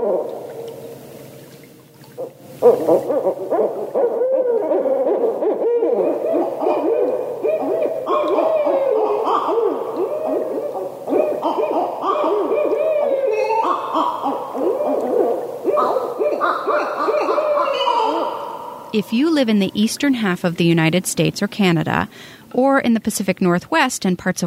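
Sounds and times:
barred owl hooting: 2.6s - 20.0s
speech: 19.0s - 24.4s.

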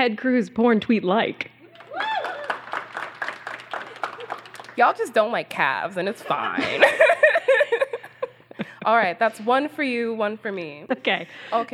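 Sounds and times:
speech: 0.0s - 2.2s, 4.8s - 7.4s, 8.8s - 11.7s
person whooping or calling out: 1.7s - 2.8s
crowd clapping: 1.7s - 5.1s
laughter: 3.7s - 4.6s, 6.1s - 8.8s.

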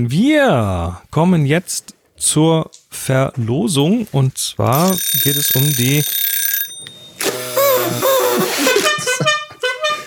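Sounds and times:
speech: 0.0s - 6.9s, 7.9s - 8.2s
toy party horn blown feebly: 7.2s - 10.0s.

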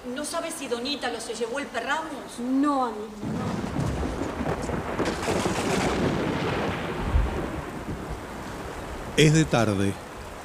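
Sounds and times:
speech: 0.0s - 3.9s, 9.2s - 10.1s
heavy rain: 3.1s - 10.4s
low rumbling thunder: 3.2s - 9.7s.

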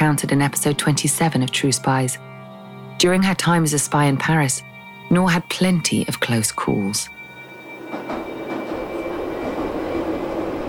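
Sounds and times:
speech: 0.0s - 2.3s, 3.0s - 7.2s
metro train rumbling along the rails: 7.6s - 10.6s.

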